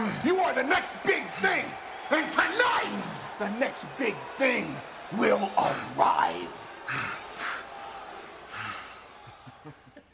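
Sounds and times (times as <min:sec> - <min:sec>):
speech: 0:00.2 - 0:07.2
laughter: 0:06.6 - 0:10.1
heavyweight wrestler breathing heavily: 0:06.8 - 0:09.2.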